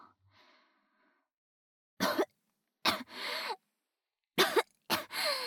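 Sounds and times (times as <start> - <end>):
person coughing after choking: 2.0 - 2.3, 2.9 - 3.1, 4.4 - 5.4.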